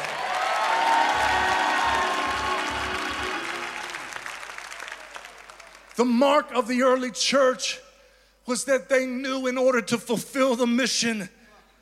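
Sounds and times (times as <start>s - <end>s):
audience whoops and shouts: 0.0s - 5.8s
large crowd clapping and cheering: 0.0s - 6.2s
speech: 6.0s - 7.8s, 8.5s - 11.4s.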